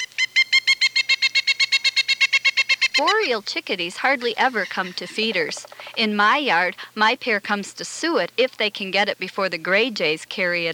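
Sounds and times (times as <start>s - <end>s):
Pileated Woodpecker calling a series of ringing notes: 0.0s - 6.6s
speech: 3.0s - 10.7s.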